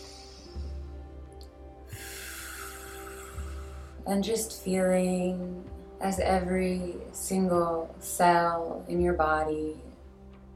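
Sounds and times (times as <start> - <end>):
slow breathwork breathing exhaling as if through a straw: 0.0 - 4.1
speech: 4.0 - 9.9.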